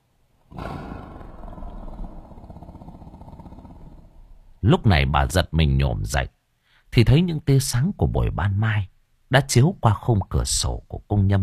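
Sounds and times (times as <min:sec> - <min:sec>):
tiger roaring: 0:00.5 - 0:04.6
speech: 0:04.6 - 0:11.4.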